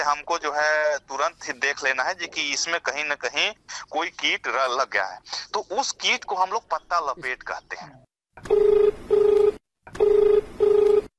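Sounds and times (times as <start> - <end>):
speech: 0.0 - 8.8
telephone ringing tone of buzzy beeps: 8.4 - 11.1.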